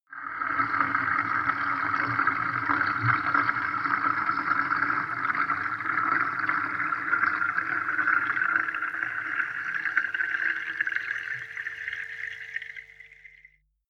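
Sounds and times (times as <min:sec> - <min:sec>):
soft bathtub filling heard underwater: 0:00.0 - 0:13.8.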